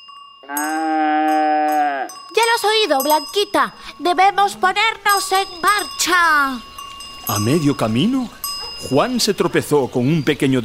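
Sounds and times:
faint bell-like ringing tone: 0.0 - 10.6
speech: 0.4 - 0.9, 2.6 - 6.7, 7.3 - 10.6
cow mooing: 0.4 - 2.3.

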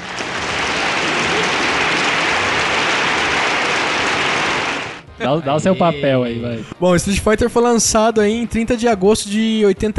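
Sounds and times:
applause: 0.0 - 5.1
speech: 5.2 - 9.9.

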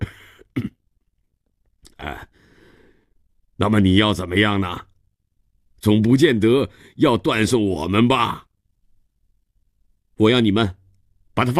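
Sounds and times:
short rough throat sounds: 0.0 - 0.8
man coughing: 0.0 - 0.9
speech: 3.6 - 4.9, 5.8 - 8.5, 10.2 - 10.8, 11.4 - 11.5.

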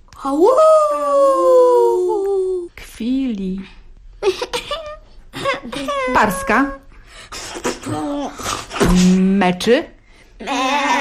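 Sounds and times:
speech: 0.2 - 1.6, 3.0 - 4.5, 5.6 - 10.9
human voice imitating an animal howl: 0.3 - 2.7, 10.4 - 10.9.

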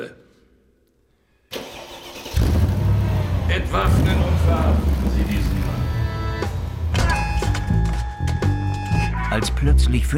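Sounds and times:
Alfa Spider car engine cranking and starting: 1.5 - 8.5
speech: 3.6 - 6.0, 9.4 - 10.1.

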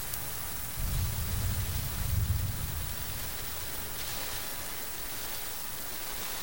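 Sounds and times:
steady rain falling: 0.0 - 6.4
low rumble: 0.6 - 4.0.

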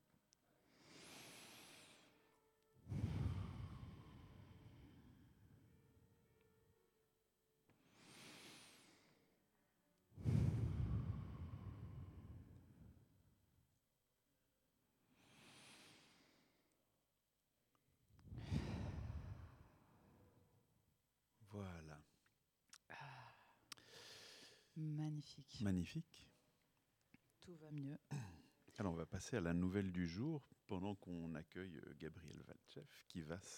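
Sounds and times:
deep breaths: 0.6 - 6.1, 7.7 - 9.5, 10.2 - 13.3, 15.1 - 16.8, 18.2 - 20.6, 22.9 - 24.8
speech: 21.5 - 22.1, 24.8 - 26.3, 27.4 - 33.5.

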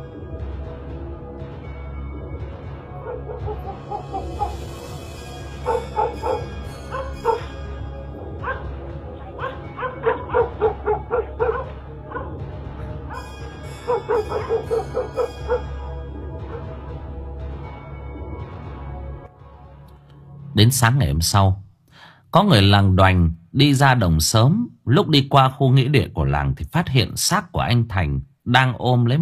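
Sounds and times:
dogs barking and howling: 2.9 - 4.9, 5.6 - 16.8
speech: 20.6 - 21.6, 22.3 - 29.2.

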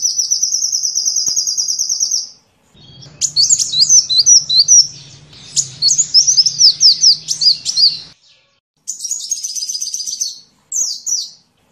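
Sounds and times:
Van Hasselt's sunbird singing: 0.0 - 11.5
steady low hum: 2.8 - 8.2.

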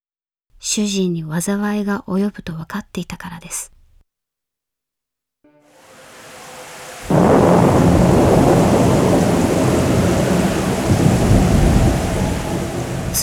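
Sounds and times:
speech: 0.6 - 3.8
heavy roaring rain on a stormy night: 5.6 - 13.2
low rumble of thunder on a stormy night: 5.7 - 13.2.

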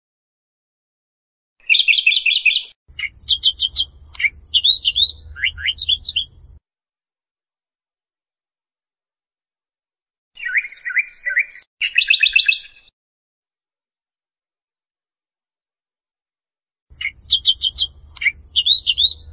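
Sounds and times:
bird singing: 1.6 - 6.6, 10.4 - 12.9, 16.9 - 19.3.

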